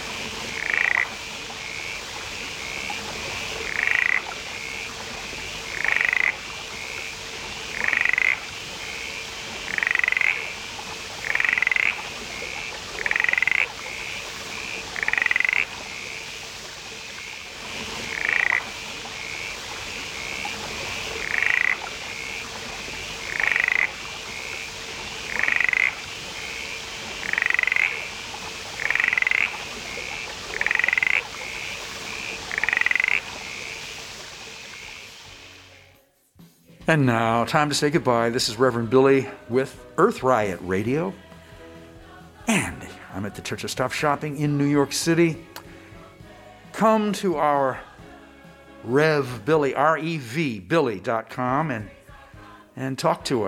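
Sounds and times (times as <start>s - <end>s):
mountain mist frog calling: 0.0s - 35.5s
rainforest hiss: 0.0s - 51.8s
speech: 36.9s - 41.2s, 43.4s - 45.5s, 46.8s - 47.9s, 48.8s - 52.0s, 52.8s - 53.4s.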